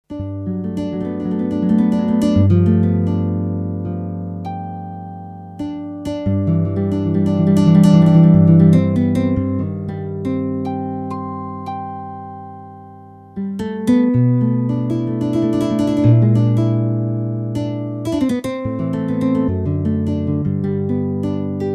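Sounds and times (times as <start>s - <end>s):
flamenco music: 0.1s - 12.7s, 13.3s - 21.7s.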